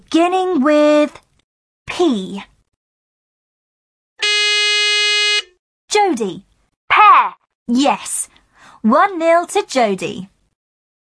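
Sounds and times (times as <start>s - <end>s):
speech: 0.1s - 1.2s, 2.0s - 2.5s, 6.2s - 6.5s, 7.2s - 10.3s
loud harsh quiz game buzzer: 4.2s - 5.5s.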